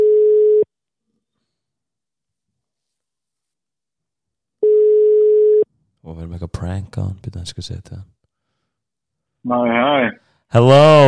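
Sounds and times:
telephone ringback tone of an unanswered call: 0:00.0 - 0:00.7, 0:04.6 - 0:05.7
speech: 0:06.2 - 0:08.2, 0:09.4 - 0:11.0.

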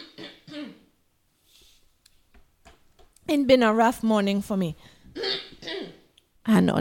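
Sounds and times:
person clearing throat: 0:00.0 - 0:00.9, 0:05.2 - 0:06.1
soft breath: 0:01.4 - 0:02.0
speech: 0:03.3 - 0:05.4, 0:06.5 - 0:06.7.

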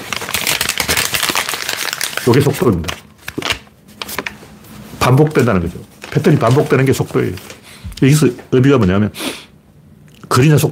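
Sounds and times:
sheet of paper crinkling as it is folded and pressed flat: 0:00.0 - 0:07.7
speech: 0:02.3 - 0:03.1, 0:05.1 - 0:09.4, 0:10.4 - 0:10.7.

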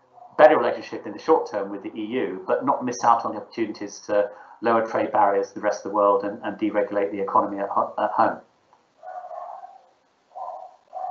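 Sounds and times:
speech: 0:00.4 - 0:08.5
dog barking: 0:09.0 - 0:11.1.

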